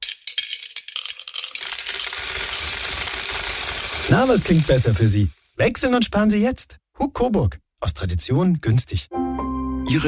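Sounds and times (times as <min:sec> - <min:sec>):
coins dropping into a piggy bank: 0:00.0 - 0:05.4
speech: 0:04.1 - 0:10.0.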